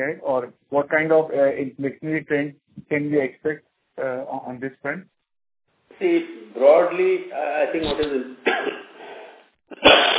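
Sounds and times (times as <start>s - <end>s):
speech: 0.0s - 5.2s, 6.0s - 8.9s, 9.7s - 10.1s
person coughing from a cold and fever: 8.4s - 9.0s, 9.7s - 10.1s.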